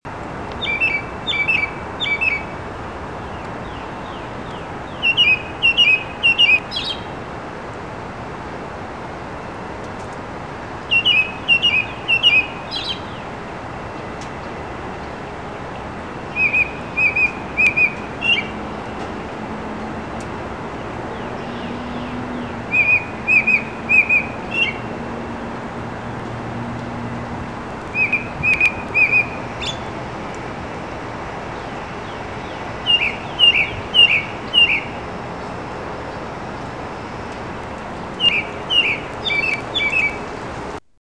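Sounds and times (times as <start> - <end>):
American robin: 0.5 - 2.6, 3.2 - 7.1, 10.9 - 13.4, 16.2 - 19.1, 21.1 - 24.9, 27.9 - 30.0, 31.5 - 37.4, 38.1 - 40.3.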